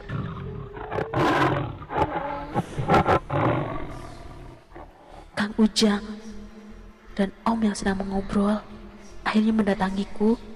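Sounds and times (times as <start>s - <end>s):
person making a rasping tiger-like roar: 0.0s - 5.0s
speech: 5.6s - 6.1s, 7.2s - 8.7s, 9.3s - 10.5s.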